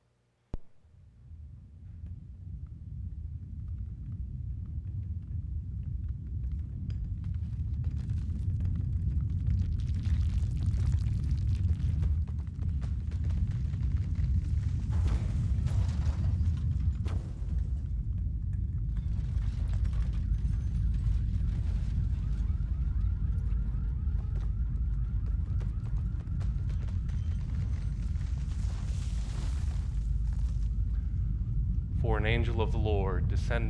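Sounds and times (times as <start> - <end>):
deep heavy earthquake rumble: 0.6 - 33.6
crackling and grinding textures: 7.8 - 31.9
speech: 32.3 - 33.6.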